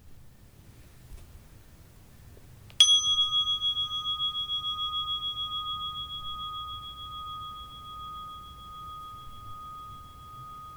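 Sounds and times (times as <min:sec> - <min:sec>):
meditation bell ringing: 0:02.8 - 0:10.7.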